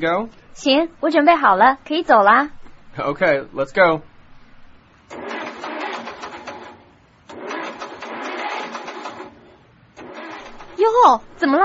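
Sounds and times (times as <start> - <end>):
speech: 0.0 - 4.1, 10.8 - 11.6
car with a broken engine cranking and sputtering, failing to start: 5.1 - 11.4.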